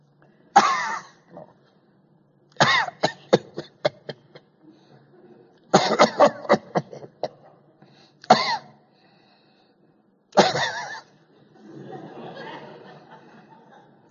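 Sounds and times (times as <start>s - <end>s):
man imitating a cough: 0.6s - 1.5s, 2.6s - 4.5s, 5.7s - 7.6s, 8.3s - 8.8s, 10.4s - 11.1s
laughter: 10.5s - 14.0s.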